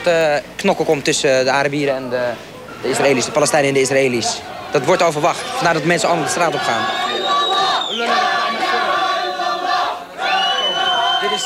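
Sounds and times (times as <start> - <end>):
speech: 0.0 - 7.2
large crowd chanting a religious slogan in unison: 2.4 - 11.4.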